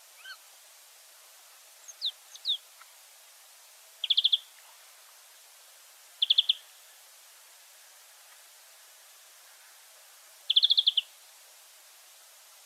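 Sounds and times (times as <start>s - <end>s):
European greenfinch Chloris chloris giving crisp ticking trills: 1.9s - 2.9s, 4.0s - 4.5s, 6.2s - 6.6s, 10.5s - 11.1s.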